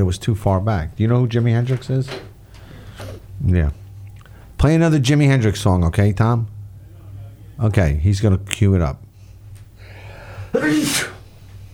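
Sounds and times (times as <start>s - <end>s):
speech: 0.0s - 2.3s, 3.4s - 3.8s, 4.6s - 6.5s, 7.6s - 9.0s, 10.5s - 11.1s
quiet hum: 0.0s - 11.7s
person sneezing: 10.5s - 11.3s.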